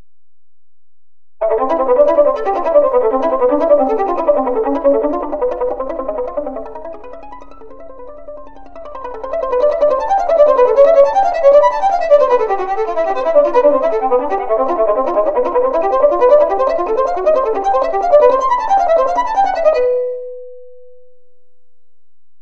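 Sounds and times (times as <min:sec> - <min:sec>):
bowed strings playing varying sautille: 0:01.4 - 0:20.9.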